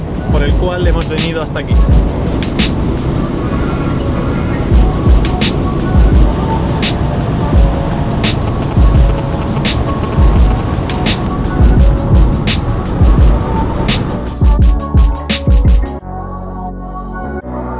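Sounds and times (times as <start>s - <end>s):
road and wind noise of a car speeding on a German autobahn: 0.0s - 14.6s
speech: 0.4s - 2.7s
low buffeting thumps: 1.7s - 3.2s, 4.8s - 15.9s.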